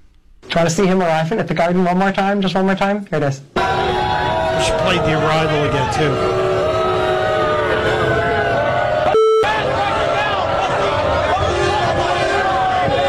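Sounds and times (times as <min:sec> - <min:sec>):
speech: 0:00.5 - 0:04.0, 0:04.6 - 0:06.4
large crowd booing and jeering at a venue in New York: 0:03.6 - 0:13.0
short electronic tone: 0:09.1 - 0:09.6.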